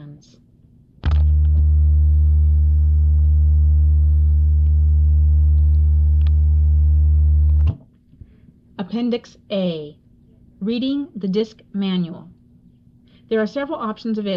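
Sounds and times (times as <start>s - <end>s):
speech synthesizer fast-forward buzz while skipping over text: 1.0s - 7.8s
speech: 8.8s - 10.0s, 10.6s - 12.4s, 13.3s - 14.3s.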